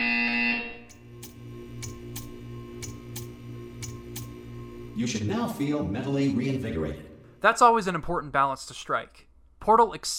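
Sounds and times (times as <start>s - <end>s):
video game buzzer: 0.0s - 5.4s
low pulsing hum: 0.0s - 7.4s
ticking clicks: 0.9s - 4.6s
speech: 5.0s - 10.1s.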